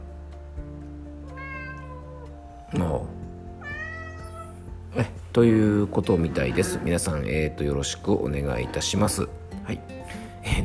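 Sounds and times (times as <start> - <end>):
cat meowing: 1.2 - 2.7, 3.4 - 4.8
speech: 2.7 - 3.2, 5.0 - 9.9.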